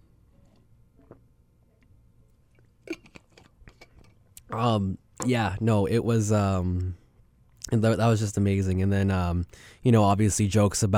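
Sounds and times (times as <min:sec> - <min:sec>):
person sipping water: 0:00.2 - 0:04.5
person swallowing: 0:02.6 - 0:04.6
speech: 0:04.5 - 0:07.0, 0:07.7 - 0:10.9.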